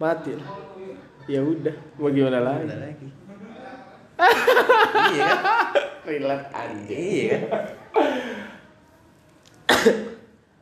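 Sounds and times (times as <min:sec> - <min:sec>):
speech: 0:00.0 - 0:00.7, 0:01.3 - 0:03.2, 0:04.2 - 0:08.3, 0:09.8 - 0:10.1
laughter: 0:03.3 - 0:06.0, 0:07.2 - 0:08.6
person coughing: 0:09.7 - 0:10.2.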